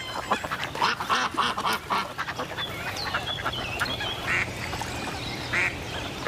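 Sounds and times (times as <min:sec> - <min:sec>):
busy outdoor noise: 0:00.0 - 0:06.2
mallard and mandarin duck quacking on a pond: 0:00.0 - 0:06.2.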